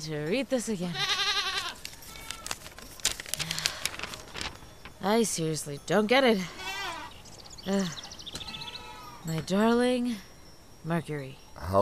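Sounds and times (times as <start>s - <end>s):
speech: 0.0s - 1.2s, 5.0s - 6.6s, 7.6s - 8.0s, 9.2s - 11.7s
goat bleating on a steep high-elevation slope: 0.9s - 2.5s, 6.5s - 7.2s
crunching and rustling: 1.4s - 5.1s.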